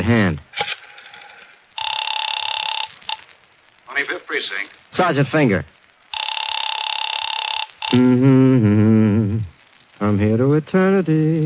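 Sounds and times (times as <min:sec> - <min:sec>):
speech: 0:00.0 - 0:00.7, 0:04.0 - 0:05.8, 0:07.9 - 0:08.8, 0:10.0 - 0:11.4
telephone ringing with a bright trilling bell: 0:01.1 - 0:03.2, 0:06.1 - 0:08.0.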